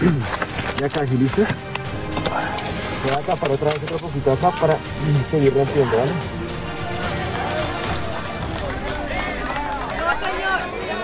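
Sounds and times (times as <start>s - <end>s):
speech: 0.0s - 1.7s, 3.0s - 6.4s
crowd of community members clapping during a rescue in Cali: 6.5s - 11.0s.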